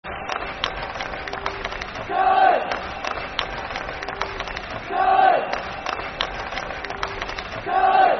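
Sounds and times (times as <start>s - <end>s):
clapping: 0.0s - 8.1s
football crowd chanting a soccer song: 2.0s - 3.8s, 4.8s - 6.0s, 7.5s - 8.1s.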